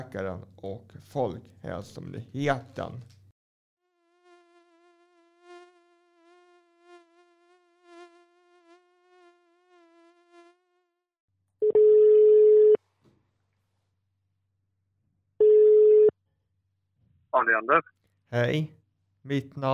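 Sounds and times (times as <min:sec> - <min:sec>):
speech: 0:00.0 - 0:03.2, 0:17.4 - 0:19.7
telephone ringback tone as a call connects: 0:11.6 - 0:12.8, 0:15.4 - 0:16.1.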